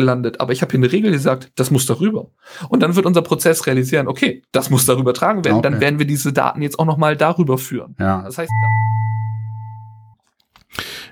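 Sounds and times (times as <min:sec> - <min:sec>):
speech: 0:00.0 - 0:09.1
ding-dong chime: 0:08.5 - 0:10.2.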